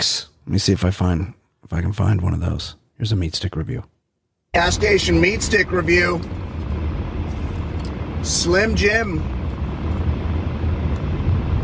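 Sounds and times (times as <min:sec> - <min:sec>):
speech: 0:00.0 - 0:03.9, 0:04.5 - 0:06.4, 0:08.2 - 0:09.4
steady low rumbling drone: 0:04.6 - 0:11.6.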